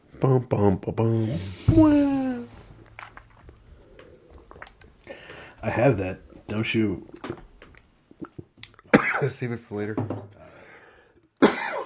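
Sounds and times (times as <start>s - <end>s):
speech: 0.2s - 2.2s, 5.6s - 7.4s, 9.2s - 10.4s
single sharp cough: 8.9s - 9.3s, 11.4s - 11.8s.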